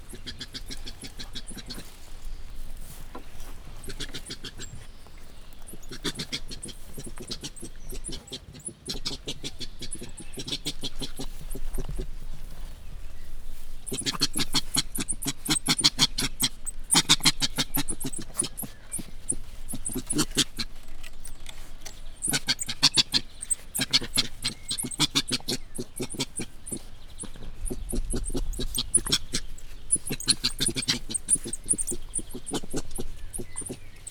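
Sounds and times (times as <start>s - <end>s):
coati worried call in a zoo: 0.0s - 2.2s, 2.8s - 12.0s, 13.8s - 34.0s.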